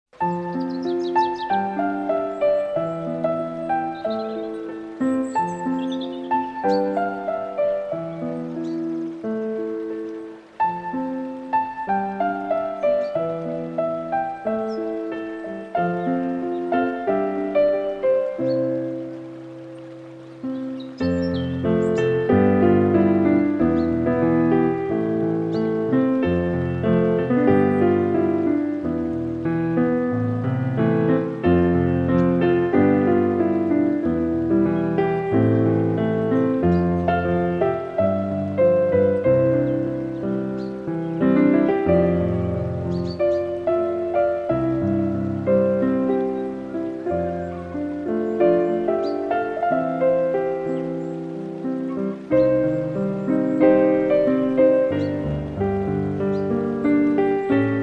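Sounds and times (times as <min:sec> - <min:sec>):
nature music: 0:00.1 - 0:57.8.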